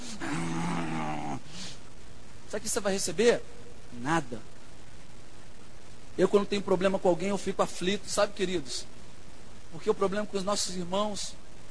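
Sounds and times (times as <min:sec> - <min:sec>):
person imitating a growl with their voice: 0:00.0 - 0:01.8
speech: 0:02.5 - 0:04.5, 0:06.2 - 0:08.9, 0:09.7 - 0:11.4.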